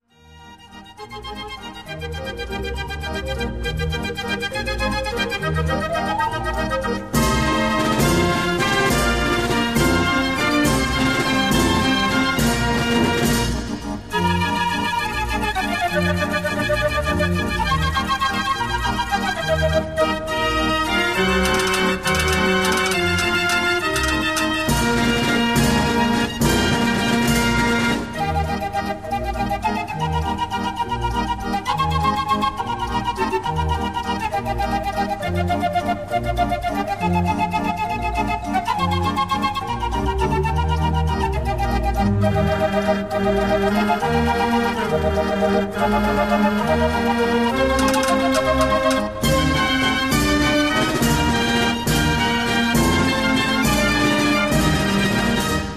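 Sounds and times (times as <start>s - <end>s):
Dutch barrel organ music: 0.1s - 55.7s.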